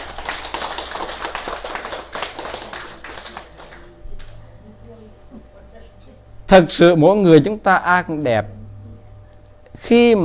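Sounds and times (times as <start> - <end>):
crowd applauding: 0.0 - 4.0
speech: 6.5 - 8.6, 9.9 - 10.2.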